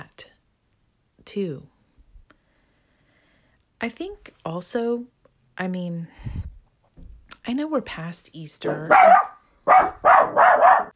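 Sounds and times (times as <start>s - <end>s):
speech: 1.3s - 1.7s, 3.8s - 6.4s, 7.4s - 10.0s
dog yelping and barking: 8.6s - 10.9s.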